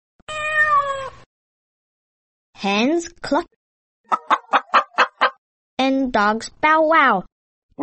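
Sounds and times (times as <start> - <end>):
cat meowing: 0.3 - 1.2
speech: 2.6 - 4.4, 5.8 - 7.8.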